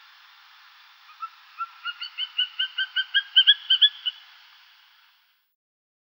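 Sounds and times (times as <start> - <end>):
greater spotted eagle Aquila clanga yelping calls: 1.1 - 4.2.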